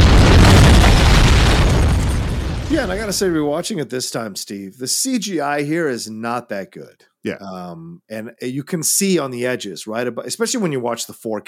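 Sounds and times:
crackling debris noise: 0.0 - 3.5
huge explosion in a film scene: 0.0 - 3.5
speech: 2.8 - 11.4.

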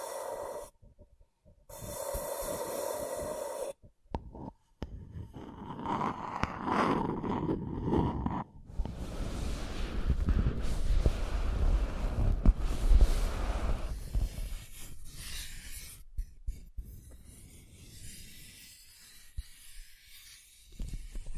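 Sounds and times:
scratching and tracing on a surface: 1.7 - 21.3.

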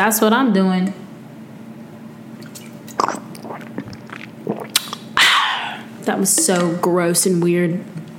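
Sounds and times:
speech: 0.0 - 1.0, 6.1 - 8.1
wet sipping and gulping of water with clicks and swallows: 2.4 - 6.6
person sputtering, nearly choking on a mouthful of water: 2.9 - 5.9.

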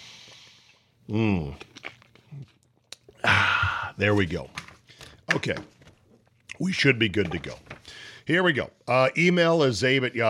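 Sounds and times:
person drinking a sip of water: 0.0 - 4.1
speech: 1.1 - 1.7, 4.0 - 4.6, 5.3 - 5.7, 6.6 - 7.7, 8.3 - 10.2.

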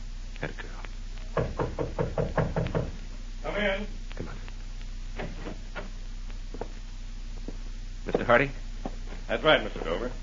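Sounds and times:
low hum: 0.0 - 10.2
speech: 0.4 - 0.8, 3.6 - 4.0, 8.3 - 8.6, 9.3 - 10.2
knocking on a hotel room door in a New York hotel corridor: 1.3 - 3.0.

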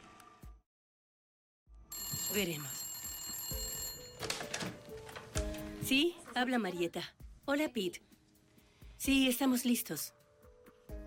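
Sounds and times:
telephone ringing with a high electronic tone: 1.9 - 5.0
speech: 2.3 - 2.8, 5.9 - 8.1, 9.0 - 10.2.

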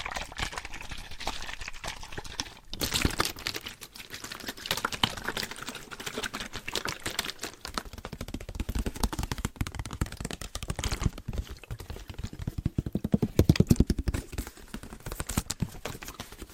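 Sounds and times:
water bottles shaking: 0.0 - 16.5
tapping on water bottles: 7.3 - 15.6.

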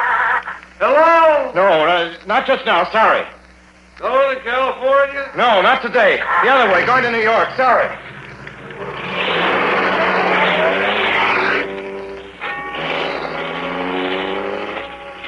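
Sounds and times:
speech: 0.8 - 3.4, 4.0 - 8.2
car engine revving as the car pulls back onto the road: 6.6 - 15.2.

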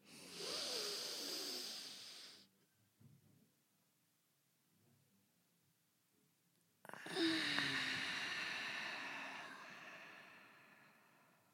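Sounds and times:
deep inhale during a guided breathing exercise: 0.0 - 2.5, 6.9 - 11.5.

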